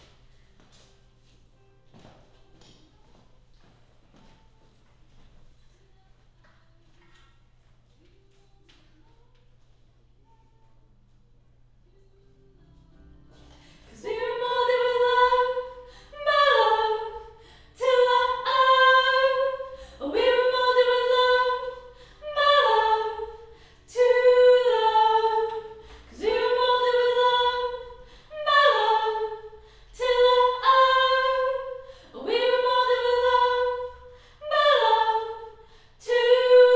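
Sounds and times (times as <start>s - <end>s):
choir singing high harmony: 13.3s - 36.7s.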